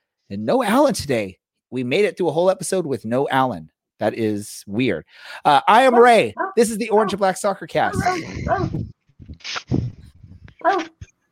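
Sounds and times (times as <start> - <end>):
speech: 0.3 - 9.9
dogs barking and whining: 5.8 - 8.8, 10.6 - 11.0.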